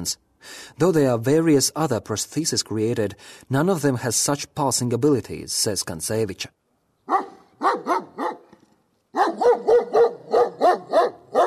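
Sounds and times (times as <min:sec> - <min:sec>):
speech: 0:00.0 - 0:06.6
beagle barking: 0:07.1 - 0:08.5, 0:09.1 - 0:11.4.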